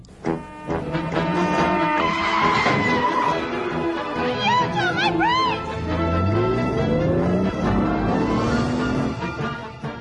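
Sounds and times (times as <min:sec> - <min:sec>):
tires squealing in a car commercial: 0:01.1 - 0:09.4
BMW car engine revving in a car commercial: 0:03.8 - 0:09.8.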